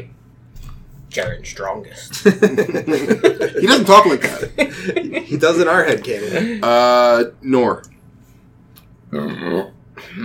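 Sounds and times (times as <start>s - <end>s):
speech: 1.1s - 7.9s, 9.1s - 10.2s
laughter: 2.2s - 6.7s
loud croaky burp: 9.1s - 10.2s.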